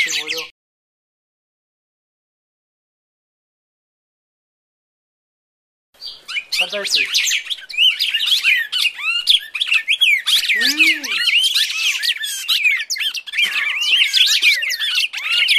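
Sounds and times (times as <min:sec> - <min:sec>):
Red-crested Cardinal fighting calls with chirps and whistled slurs: 0:06.0 - 0:15.5.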